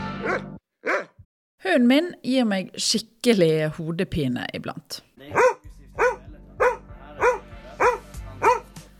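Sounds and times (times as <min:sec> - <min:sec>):
dog barking: 0:00.2 - 0:01.2, 0:05.3 - 0:08.7
speech: 0:01.7 - 0:05.5.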